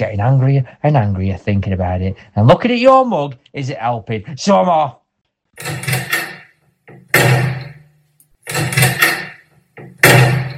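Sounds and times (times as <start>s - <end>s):
speech: 0.0s - 5.0s, 5.6s - 5.9s
stuck door being yanked and rattled hard: 5.6s - 7.8s, 8.4s - 10.5s.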